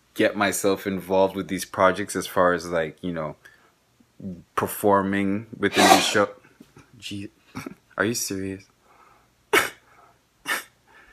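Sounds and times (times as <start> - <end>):
speech: 0.2 - 3.5, 4.2 - 6.4, 7.0 - 8.7
woman sneezing: 5.8 - 6.2.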